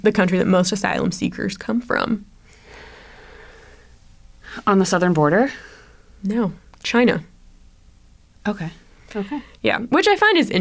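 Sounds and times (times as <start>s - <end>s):
speech: 0.0s - 2.3s, 4.5s - 7.3s, 8.4s - 10.5s
heavy breathing: 2.4s - 4.7s, 5.5s - 6.2s, 8.9s - 9.7s.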